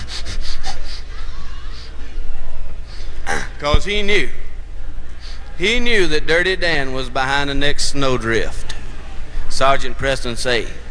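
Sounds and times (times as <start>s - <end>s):
voice imitating a husky dog sniffing: 0.0s - 2.0s
speech: 3.6s - 4.4s, 5.6s - 8.6s, 9.6s - 10.8s.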